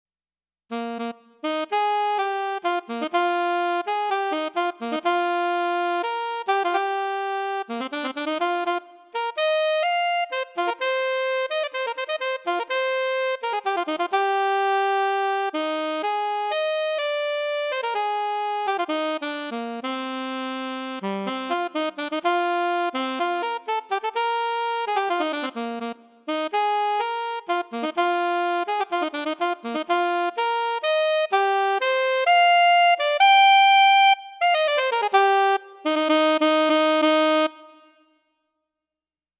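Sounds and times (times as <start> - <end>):
alto saxophone playing: 0.7 - 38.3.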